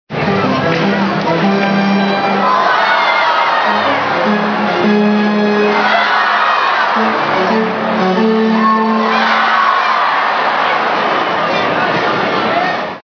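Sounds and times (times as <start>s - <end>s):
baseball organ music: 0.1s - 10.2s
baseball crowd: 0.1s - 13.0s.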